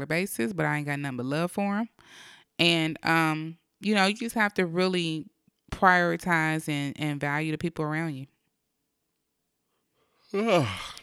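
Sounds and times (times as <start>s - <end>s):
speech: 0.0s - 8.3s, 10.3s - 11.0s
person yawning: 10.3s - 11.0s.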